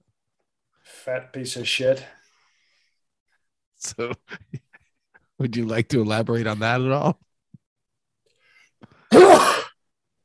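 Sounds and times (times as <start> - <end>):
speech: 1.0 - 2.2, 3.8 - 4.6, 5.4 - 7.2
laughter: 3.8 - 5.3
person sneezing: 9.1 - 9.8.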